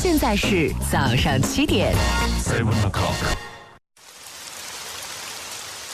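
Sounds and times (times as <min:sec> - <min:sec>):
speech: 0:00.2 - 0:03.5
rain falling: 0:04.0 - 0:05.9.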